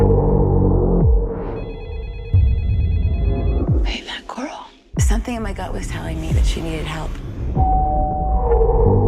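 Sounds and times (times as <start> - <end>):
low throbbing hum: 0.0 - 4.2, 4.9 - 9.0
mobile phone electronic ringtone: 1.5 - 3.7
speech: 5.3 - 7.8.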